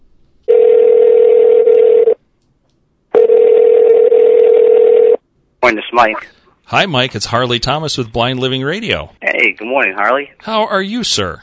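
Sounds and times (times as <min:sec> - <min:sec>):
telephone ringback tone over the line: 0:00.5 - 0:02.2, 0:03.2 - 0:05.2
speech: 0:05.6 - 0:11.4.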